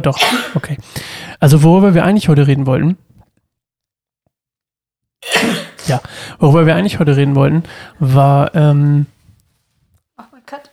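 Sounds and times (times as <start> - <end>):
speech: 0.0 - 3.1, 5.3 - 9.1
loud sneeze: 5.2 - 6.0.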